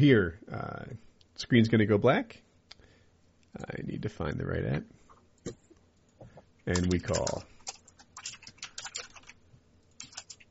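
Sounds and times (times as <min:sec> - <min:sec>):
speech: 0:00.0 - 0:02.4, 0:03.6 - 0:05.6, 0:06.6 - 0:07.5
fingers typing on a computer keyboard: 0:06.7 - 0:09.4, 0:10.0 - 0:10.4.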